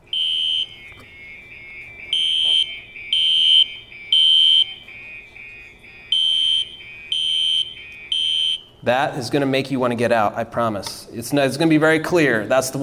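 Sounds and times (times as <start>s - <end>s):
fire alarm blaring: 0.0s - 9.2s
speech: 8.9s - 12.8s.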